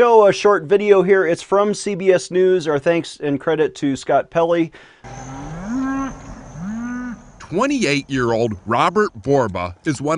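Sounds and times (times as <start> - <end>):
speech: 0.0 - 5.4, 7.5 - 10.1
cow mooing: 5.0 - 7.6.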